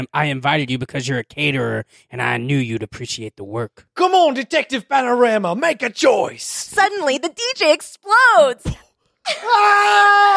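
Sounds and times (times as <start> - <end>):
speech: 0.0 - 10.3
loud high-pitched scream: 9.3 - 10.3.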